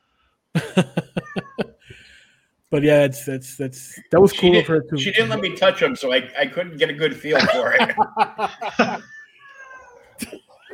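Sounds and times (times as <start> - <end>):
laughter: 0.6 - 1.8, 4.3 - 9.1, 10.2 - 10.7
speech: 0.8 - 1.0, 2.7 - 9.1
male cat meowing in a house: 1.1 - 1.8, 8.8 - 10.2.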